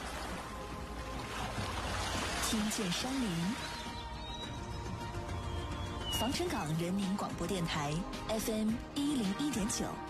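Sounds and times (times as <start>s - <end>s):
ocean waves: 0.0s - 10.0s
speech: 2.5s - 3.8s, 6.2s - 10.0s.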